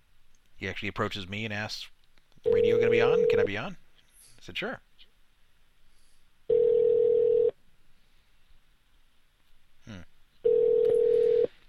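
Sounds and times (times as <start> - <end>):
speech: 0.6 - 3.8, 4.4 - 4.9
outgoing phone call ringback tones: 2.5 - 3.5, 6.5 - 7.6, 10.4 - 11.6
phone line click: 10.5 - 11.5.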